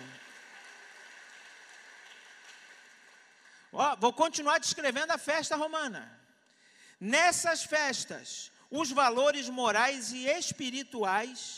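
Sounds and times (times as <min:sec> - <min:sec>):
crowd clapping in applause: 0:00.0 - 0:03.8
speech: 0:03.8 - 0:06.2, 0:07.0 - 0:11.5.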